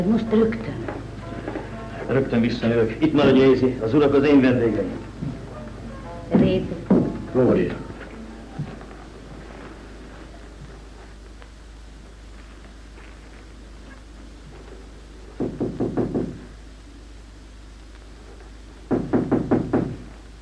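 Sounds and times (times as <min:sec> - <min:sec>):
speech: 0:00.0 - 0:00.7, 0:02.1 - 0:05.1, 0:06.5 - 0:07.8
steady low hum: 0:00.0 - 0:20.4
firm knocks on a door: 0:06.4 - 0:07.3, 0:15.4 - 0:16.5, 0:18.9 - 0:20.1.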